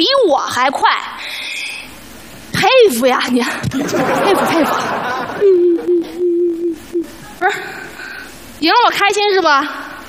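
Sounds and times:
speech: 0:00.0 - 0:01.4, 0:02.8 - 0:05.8, 0:08.6 - 0:09.8
laughter: 0:03.7 - 0:06.3
girl crying after losing a car race: 0:05.4 - 0:07.9.

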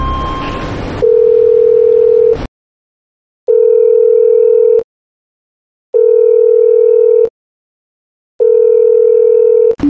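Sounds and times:
mobile phone call ringback tone: 0:00.0 - 0:02.4, 0:03.5 - 0:04.8, 0:06.0 - 0:07.3, 0:08.4 - 0:09.8.

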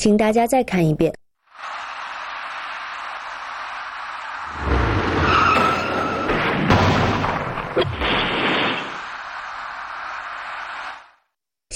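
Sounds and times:
speech: 0:00.0 - 0:01.8, 0:07.8 - 0:08.1
box van skidding on a road: 0:01.6 - 0:11.2
harsh broadband rush: 0:01.6 - 0:11.2
sharp knocks of a box van rear-ending a white car: 0:05.5 - 0:09.1.

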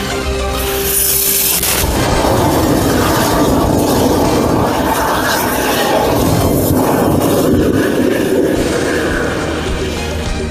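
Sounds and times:
lithium battery venting and crackling: 0:00.5 - 0:10.4
punctured lithium battery pack exploding: 0:00.9 - 0:06.8.

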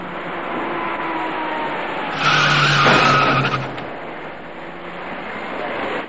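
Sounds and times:
road noise: 0:00.0 - 0:06.0
white passenger car tires skidding on a wet road: 0:00.6 - 0:04.3.

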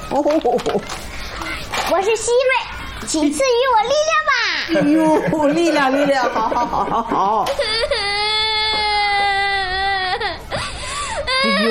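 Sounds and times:
speech: 0:00.1 - 0:01.1, 0:01.9 - 0:07.8, 0:11.4 - 0:11.6
laughter: 0:04.8 - 0:07.9
child crying at home: 0:07.5 - 0:11.6.

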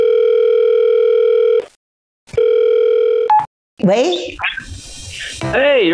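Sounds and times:
telephone ringback tone as a call connects: 0:00.0 - 0:01.6, 0:02.4 - 0:03.5
speech: 0:03.9 - 0:04.7, 0:05.4 - 0:05.9.

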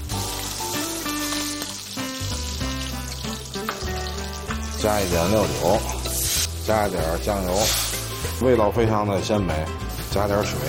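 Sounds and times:
shrimp frying in a hot pan: 0:00.0 - 0:08.4
speech: 0:04.8 - 0:06.0, 0:06.7 - 0:10.6.

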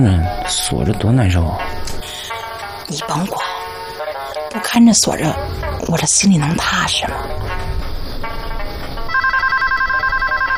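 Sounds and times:
speech: 0:00.0 - 0:02.1, 0:02.9 - 0:03.5, 0:04.5 - 0:07.7
telephone ringing with an electronic trill: 0:09.1 - 0:10.5.

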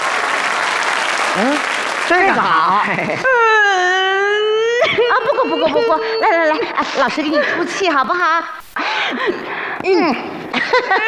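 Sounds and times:
steady noise: 0:00.0 - 0:11.0
speech: 0:01.4 - 0:03.9, 0:04.8 - 0:11.0
laughter: 0:01.4 - 0:08.0, 0:10.4 - 0:11.0
young girl crying and sobbing after being teased: 0:03.2 - 0:07.8, 0:10.9 - 0:11.0.

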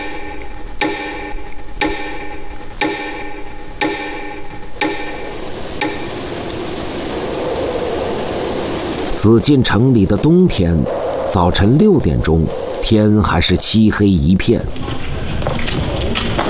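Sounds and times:
clock ticking: 0:00.0 - 0:06.1
humming, ringing background: 0:00.0 - 0:14.3
soft rushing noise: 0:05.2 - 0:15.4
speech: 0:09.2 - 0:15.0.

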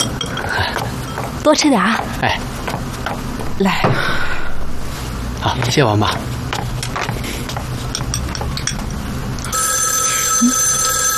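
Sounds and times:
dishes and cutlery clinking softly: 0:00.0 - 0:03.2, 0:06.5 - 0:09.5
speech: 0:01.5 - 0:02.5, 0:03.6 - 0:04.3, 0:05.4 - 0:06.3
telephone bell ringing loudly: 0:09.5 - 0:11.1.

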